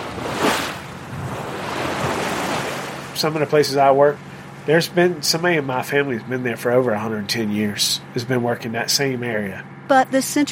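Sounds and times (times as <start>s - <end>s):
ocean waves washing against a shrimp boat at sea at night: 0.0s - 7.3s
wind: 0.0s - 10.4s
speech: 3.2s - 10.4s.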